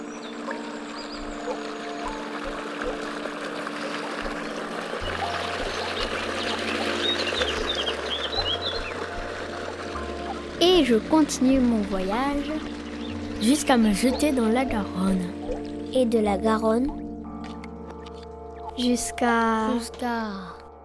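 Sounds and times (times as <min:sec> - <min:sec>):
birds chirping and singing by a river: 0:00.0 - 0:03.2, 0:03.8 - 0:15.9
steady rush of flowing river water: 0:00.0 - 0:15.8
speech: 0:10.8 - 0:12.8, 0:13.4 - 0:17.0, 0:18.8 - 0:20.6.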